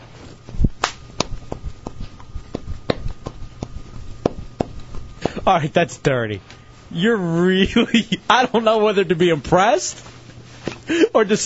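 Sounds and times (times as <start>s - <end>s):
man slapping himself on the skin: 0.8s - 5.4s
speech: 5.5s - 10.1s, 10.9s - 11.4s.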